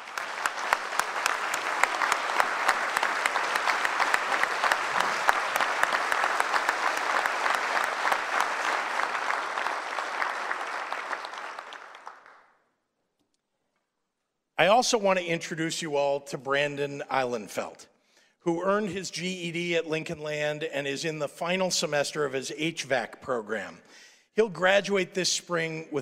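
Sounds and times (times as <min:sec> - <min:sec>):
applause from a sizeable audience: 0:00.0 - 0:12.5
speech: 0:14.6 - 0:26.0.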